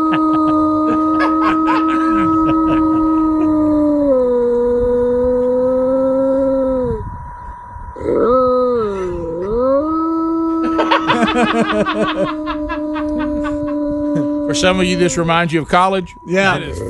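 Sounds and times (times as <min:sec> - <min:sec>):
laughter: 0:00.0 - 0:03.5, 0:10.6 - 0:14.6
dog howling: 0:00.0 - 0:07.1, 0:08.0 - 0:16.8
speech: 0:14.6 - 0:16.8.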